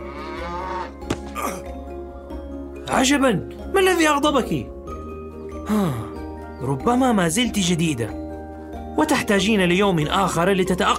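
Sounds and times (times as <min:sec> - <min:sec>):
cow mooing with a rich droning tone: 0:00.0 - 0:01.0
sharp thump and scuffle of a cow kicking away a man milking it: 0:01.0 - 0:01.4
speech: 0:02.9 - 0:04.7, 0:05.7 - 0:08.2, 0:09.0 - 0:10.9.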